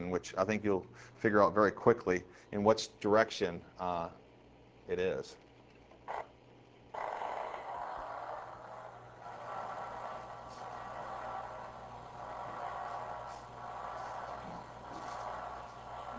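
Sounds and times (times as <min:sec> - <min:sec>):
speech: 0:00.1 - 0:04.2, 0:04.9 - 0:05.4
primary motor cortex neuron spikes played as crackling clicks: 0:07.0 - 0:16.1.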